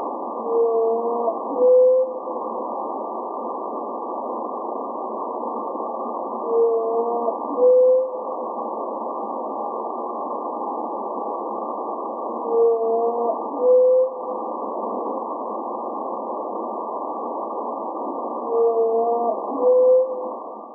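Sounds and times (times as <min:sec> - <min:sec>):
steady hiss: 0:00.0 - 0:20.7
whale song sped up twenty times: 0:00.3 - 0:02.4, 0:06.3 - 0:08.4, 0:12.2 - 0:14.4, 0:18.2 - 0:20.7.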